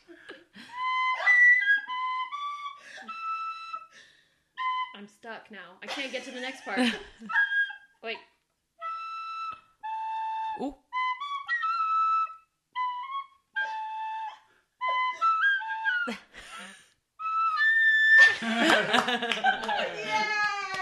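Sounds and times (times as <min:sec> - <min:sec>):
penny whistle playing a halting tune of high notes: 0:00.6 - 0:05.0, 0:08.8 - 0:18.7
speech: 0:05.3 - 0:08.3, 0:10.6 - 0:10.8, 0:18.4 - 0:20.4
bright noisy laughter: 0:06.2 - 0:07.3, 0:18.2 - 0:20.8
excited voices: 0:19.4 - 0:20.8.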